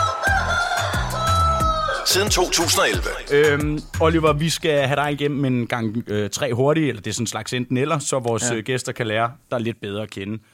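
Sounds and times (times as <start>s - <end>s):
rooster crowing: 0.0s - 2.4s
speech: 2.1s - 10.5s.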